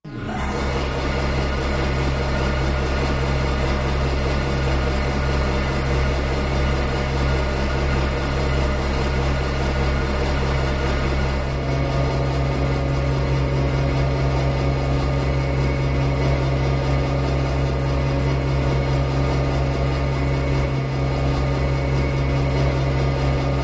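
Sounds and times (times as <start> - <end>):
large rotating generator idling with power core hum: 0.1 - 23.6.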